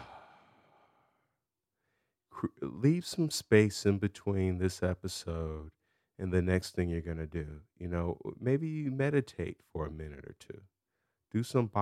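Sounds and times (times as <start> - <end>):
big deep exhale: 0.0 - 1.2
speech: 2.4 - 10.7, 11.3 - 11.8.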